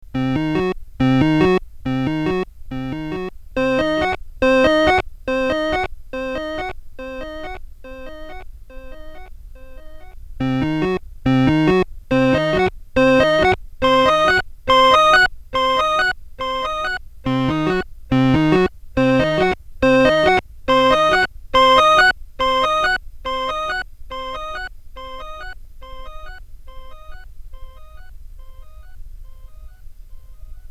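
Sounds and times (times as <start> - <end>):
organ with one-second delay effect through OCTO-FX: 0.2 - 30.6.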